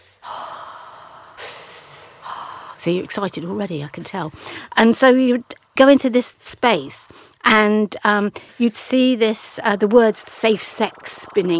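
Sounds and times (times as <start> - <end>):
person breathing heavily: 0.0 - 2.8, 4.4 - 4.8
speech: 2.8 - 11.5.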